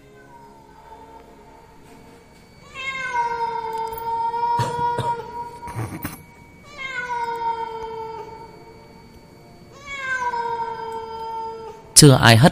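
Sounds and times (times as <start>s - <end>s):
cat meowing in long wailing cries: 2.6s - 6.0s, 6.6s - 8.4s, 9.7s - 11.8s
speech: 12.0s - 12.5s.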